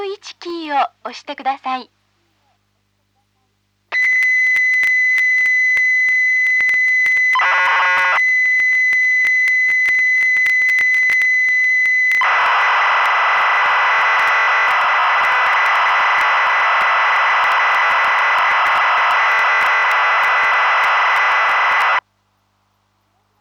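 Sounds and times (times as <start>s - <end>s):
speech: 0.7s - 2.0s
Famicom BASIC program data loading from cassette tape: 4.0s - 22.0s.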